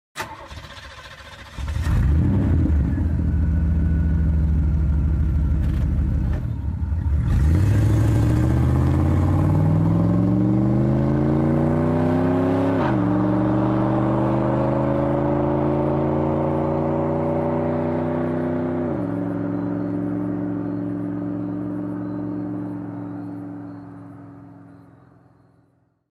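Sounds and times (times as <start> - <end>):
muscle car V8 engine: 0.2 - 25.8.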